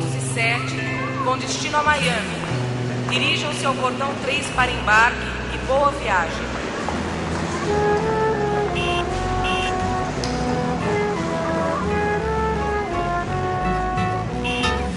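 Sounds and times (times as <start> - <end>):
loud steady roar of engines: 0.0 - 14.9
speech: 0.4 - 6.6, 7.7 - 8.0.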